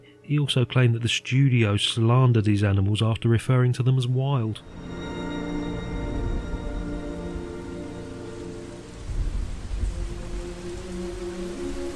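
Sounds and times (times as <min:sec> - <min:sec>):
speech: 0:00.3 - 0:05.0
heavy rainfall during thunderstorm: 0:04.6 - 0:11.9
deep rolling rumble of thunder: 0:09.0 - 0:10.5.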